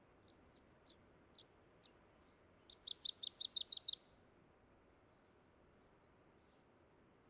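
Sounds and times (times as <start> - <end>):
Wilson's warbler song: 0.0 - 4.0.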